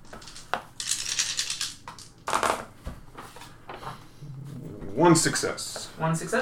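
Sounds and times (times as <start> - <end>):
dice clattering across a hard tabletop: 0.0 - 2.7
speech: 5.0 - 6.4.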